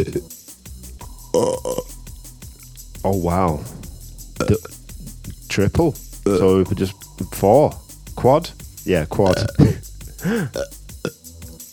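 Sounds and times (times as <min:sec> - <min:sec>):
person burping: 0:01.4 - 0:01.8, 0:09.3 - 0:10.7
speech: 0:03.0 - 0:03.8, 0:04.5 - 0:04.8, 0:05.6 - 0:09.6, 0:10.2 - 0:10.7.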